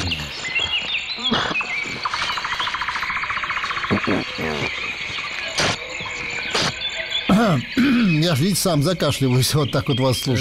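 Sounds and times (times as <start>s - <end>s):
thrushes, finches and larks singing: 0.0s - 10.3s
speech: 4.1s - 4.8s, 7.4s - 10.3s.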